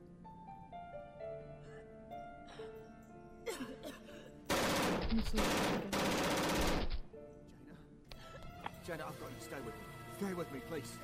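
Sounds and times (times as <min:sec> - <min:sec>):
automatic gunfire in a dramatic scene: 0:04.5 - 0:07.1
speech: 0:05.1 - 0:06.2, 0:08.9 - 0:11.0.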